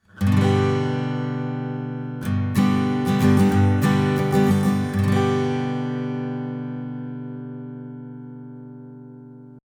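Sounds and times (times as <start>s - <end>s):
acoustic guitar recorded with Schoeps Mk4 microphone: 0.0s - 9.6s.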